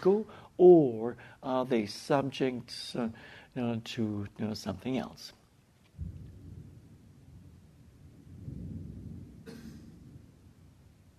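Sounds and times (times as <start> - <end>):
speech: 0.0 - 5.4
rumbling thunder: 6.0 - 11.1.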